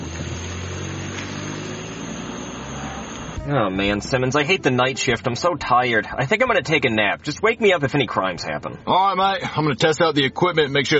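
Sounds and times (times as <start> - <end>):
car engine running as the car is put into drive: 0.0 - 7.0
speech: 3.4 - 10.9.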